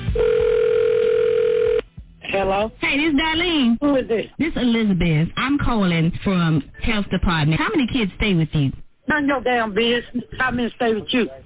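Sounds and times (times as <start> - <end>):
telephone dial tone over a muffled phone line: 0.2 - 1.8
speech: 2.4 - 11.4.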